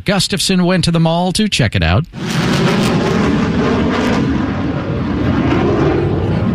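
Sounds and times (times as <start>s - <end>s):
speech: 0.0s - 2.8s
Marine Corps F-18 military fighter jet flyover: 2.1s - 6.5s.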